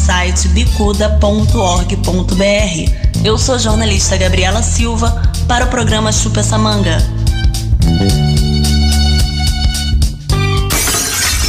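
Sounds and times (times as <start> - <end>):
speech: 0.4 - 7.2, 7.8 - 8.2
short burst of music with sustained tones: 7.1 - 11.2
glass shattering: 10.7 - 11.4.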